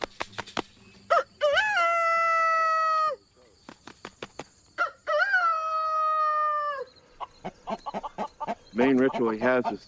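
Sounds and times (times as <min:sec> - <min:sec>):
rooster wings flapping: 0:00.0 - 0:00.8, 0:03.6 - 0:04.6
rooster crowing: 0:01.1 - 0:03.2, 0:04.8 - 0:07.0
speech: 0:08.8 - 0:09.8.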